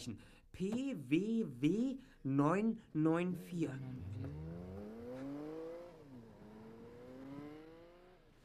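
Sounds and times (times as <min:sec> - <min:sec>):
speech: 0:00.0 - 0:04.7
car engine accelerating as it pulls away: 0:03.3 - 0:08.4.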